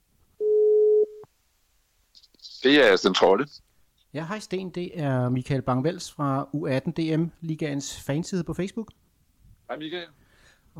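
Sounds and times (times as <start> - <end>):
electronic ringback tone on a phone line on an outgoing call: 0.4 - 1.2
speech: 2.6 - 9.0, 9.7 - 10.2.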